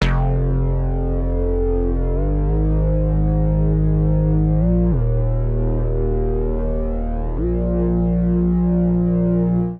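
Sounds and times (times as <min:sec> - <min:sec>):
woofer bassline in F minor at 98 bpm: 0:00.0 - 0:09.7.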